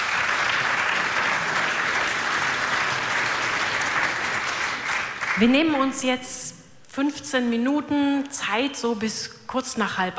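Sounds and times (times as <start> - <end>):
audience applause: 0.0 - 5.4
speech: 5.4 - 10.1.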